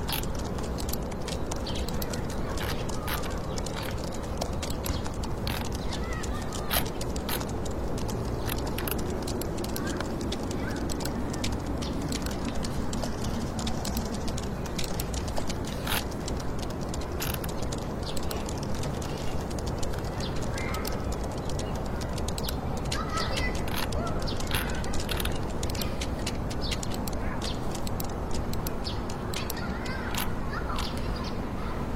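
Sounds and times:
fingertips typing in a computer room: 0.0 - 31.3
constant dense low hum of city noise: 0.0 - 31.9.

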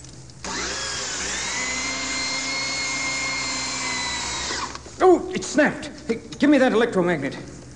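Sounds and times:
motorized drill boring through material with high-pitched grinding whine: 0.4 - 4.8
speech: 5.1 - 7.5.

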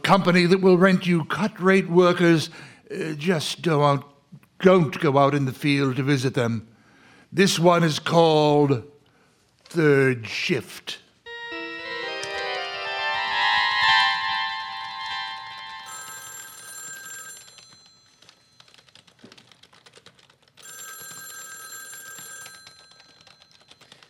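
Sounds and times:
speech: 0.1 - 6.7, 7.3 - 8.9, 9.7 - 11.0
telephone ringing with a bright electronic trill: 11.3 - 19.0, 20.6 - 24.0.

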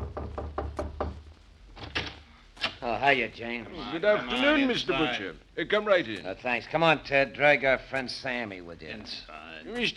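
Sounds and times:
knocking on a door: 0.0 - 1.2
speech: 2.8 - 9.9.

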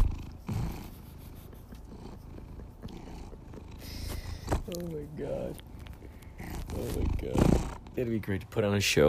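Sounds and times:
cat purring loudly in the Los Angeles County area: 0.0 - 9.0
speech: 4.7 - 5.7, 6.7 - 9.0.

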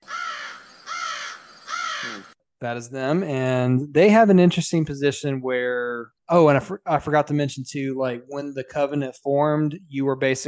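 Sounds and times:
harsh raspy squawks from bird-like alien creature of the jackal or skirmisher race: 0.0 - 2.4
speech: 2.0 - 10.4.

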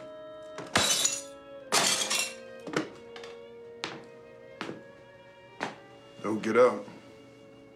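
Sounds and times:
door being smashed in with heavy blows: 0.6 - 2.4
speech: 6.3 - 6.9.

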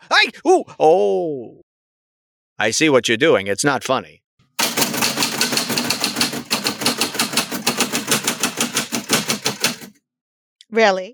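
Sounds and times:
speech: 0.1 - 1.6, 2.6 - 4.2, 10.7 - 11.1
typewriter keys clacking: 4.6 - 10.0.

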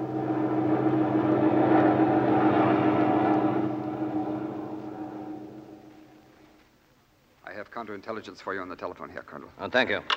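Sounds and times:
airplane engine droning in flight: 0.0 - 6.4
speech: 7.8 - 10.1.

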